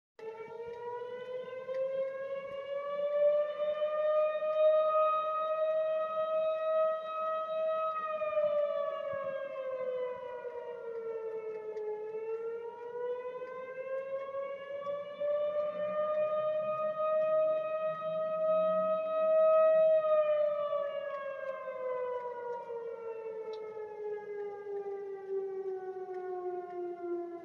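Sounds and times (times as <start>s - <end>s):
storm siren: 0.2s - 27.4s.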